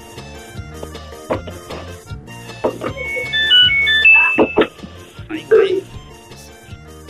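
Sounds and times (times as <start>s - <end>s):
people talking: 2.7s - 4.7s, 5.3s - 6.0s
clothes dryer electronic chime melody of high beeps: 2.9s - 4.7s.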